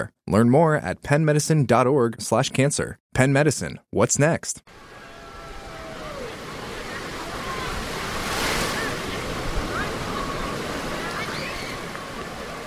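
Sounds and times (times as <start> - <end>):
speech: 0.0 - 5.0
gusting wind at a beach: 4.7 - 12.6
ocean waves washing onto a beach at Ocean City New Jersey: 4.7 - 12.6.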